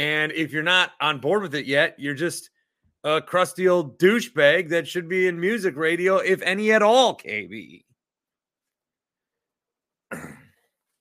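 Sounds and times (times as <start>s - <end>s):
speech: 0.0s - 7.9s, 10.1s - 10.4s
short rough throat clearing: 10.1s - 10.7s.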